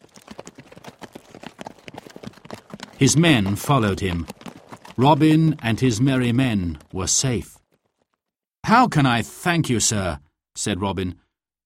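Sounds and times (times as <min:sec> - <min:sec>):
horse hooves as a horse is ridden away: 0:00.0 - 0:08.2
speech: 0:03.0 - 0:04.4, 0:05.0 - 0:07.6, 0:08.7 - 0:11.2.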